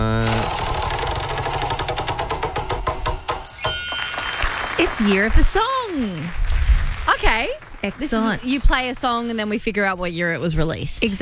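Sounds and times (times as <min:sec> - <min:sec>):
prize wheel spinning with ratcheting clicks: 0:00.2 - 0:04.8
speech: 0:05.0 - 0:06.4, 0:07.1 - 0:11.2.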